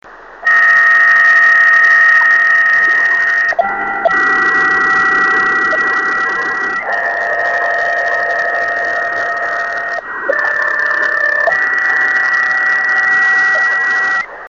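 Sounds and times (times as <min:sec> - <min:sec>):
unknown type radio data transmission on 26.900 MHz, possibly POCSAG: 0:00.4 - 0:14.4.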